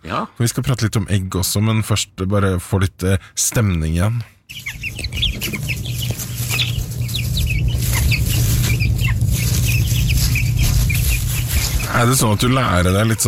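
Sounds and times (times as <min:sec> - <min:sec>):
speech: 0:00.1 - 0:06.2, 0:11.9 - 0:13.2
chicks peeping in a henhouse yard: 0:04.4 - 0:13.2
hen clucking in a henhouse yard: 0:04.5 - 0:13.2
steady hum: 0:04.5 - 0:13.2.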